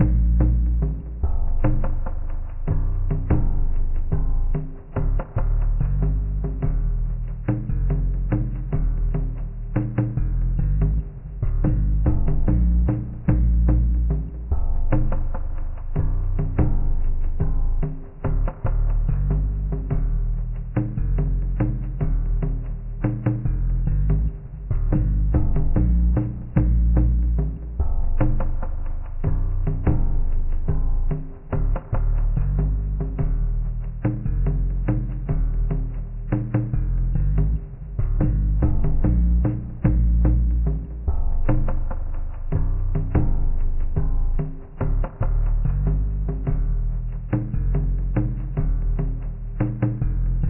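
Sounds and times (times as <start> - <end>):
C bass in background music: 0.0 - 50.4.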